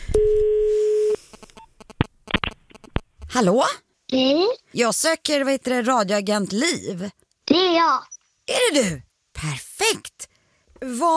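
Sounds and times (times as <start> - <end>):
steady telephone ringback tone: 0.2 - 1.2
clicks and handling noises as the phone line connects: 1.3 - 3.3
speech: 3.3 - 11.1.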